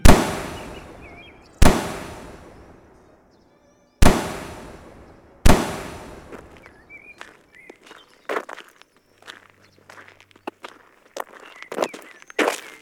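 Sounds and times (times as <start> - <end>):
gunshots from soldiers at shooting practice at camp: 0.0 - 2.8, 4.0 - 6.7.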